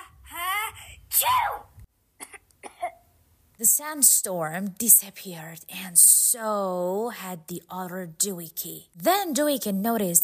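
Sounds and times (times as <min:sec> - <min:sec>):
person sneezing: 0:01.1 - 0:01.6
person coughing: 0:02.2 - 0:03.0
speech: 0:03.7 - 0:10.2.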